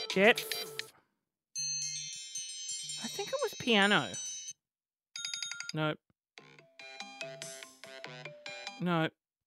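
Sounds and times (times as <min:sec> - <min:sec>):
speech: 0:00.1 - 0:00.7, 0:03.7 - 0:04.3, 0:05.7 - 0:06.1, 0:08.8 - 0:09.2
bright electronic phone ringtone: 0:01.5 - 0:04.6, 0:05.1 - 0:05.8, 0:06.4 - 0:08.8.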